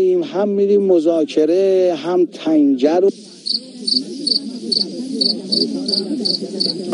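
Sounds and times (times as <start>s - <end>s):
speech: 0.0s - 6.9s
low murmur: 3.0s - 6.9s
cricket chirping: 3.1s - 6.9s.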